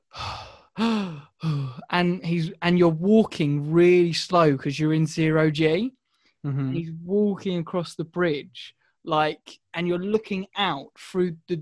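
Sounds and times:
voice imitating tight breathing of a space video game character in zero gravity: 0.0 - 1.9, 6.5 - 6.8
speech: 2.0 - 11.6.

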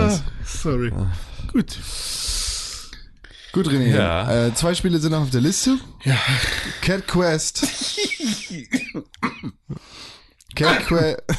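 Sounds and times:
speech: 0.1 - 2.2, 3.6 - 11.3
loud harsh cough into a microphone: 7.6 - 9.7.

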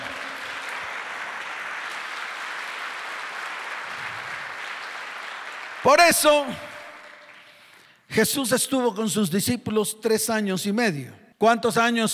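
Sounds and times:
crowd applauding: 0.0 - 8.0
speech: 5.8 - 6.7, 8.1 - 12.1.

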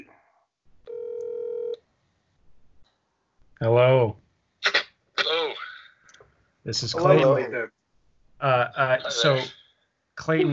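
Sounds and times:
electronic phone ringing tone: 0.9 - 1.8
speech: 3.6 - 4.2, 6.6 - 7.8, 8.4 - 9.6, 10.2 - 10.5.

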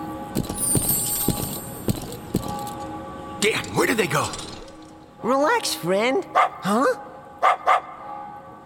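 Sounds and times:
speech: 0.3 - 0.6, 3.4 - 4.5, 5.2 - 7.5
small dog yelping and barking: 6.3 - 6.7, 7.4 - 8.0.

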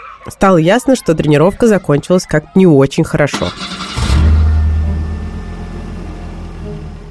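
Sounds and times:
speech: 0.2 - 3.7
car engine starting and revving: 3.3 - 7.0.

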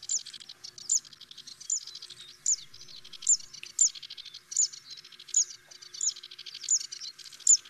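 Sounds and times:
Zitting Cisticola singing sharp high zit notes: 0.0 - 7.6.

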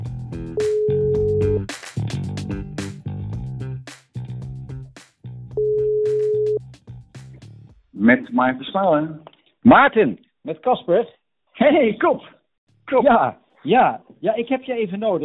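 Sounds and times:
speech: 0.3 - 0.8, 8.1 - 12.3, 12.9 - 15.2
telephone ringback tone while placing a call: 0.6 - 1.4, 5.6 - 6.6.

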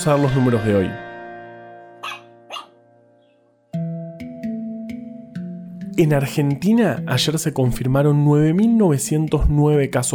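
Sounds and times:
speech: 0.0 - 1.0, 6.0 - 10.1
female dog yelping and whining: 2.0 - 2.7.

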